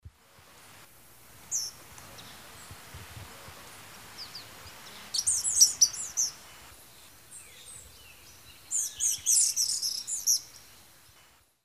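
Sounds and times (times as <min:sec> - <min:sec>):
pair of Empidonomus varius calling in the Eastern Lowlands of South America: 0:01.5 - 0:10.8.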